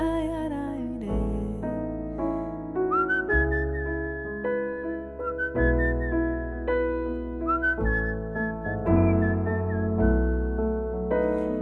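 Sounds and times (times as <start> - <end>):
steady instrumental backing music: 0.0 - 11.5
person whistling a melody: 2.9 - 10.6.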